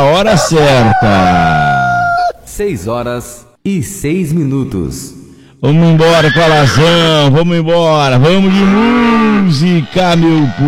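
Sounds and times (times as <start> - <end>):
speech: 0.0 - 1.6, 2.6 - 10.6
rooster crowing: 0.1 - 2.4.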